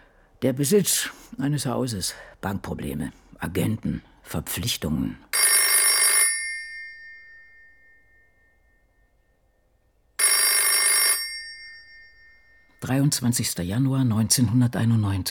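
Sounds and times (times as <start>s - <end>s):
speech: 0.4s - 5.3s, 12.9s - 15.2s
telephone bell ringing with metallic trill: 5.3s - 9.0s, 10.2s - 12.8s.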